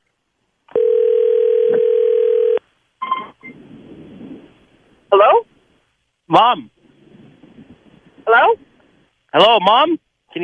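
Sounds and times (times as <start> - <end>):
telephone ringing tone while a call is placed: 0.7 - 3.4
speech: 6.3 - 6.7, 9.4 - 10.4.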